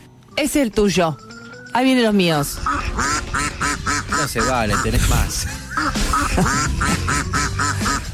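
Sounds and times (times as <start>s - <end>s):
speech: 0.4s - 3.6s, 4.2s - 8.0s
duck quacking sound effect: 2.5s - 8.1s.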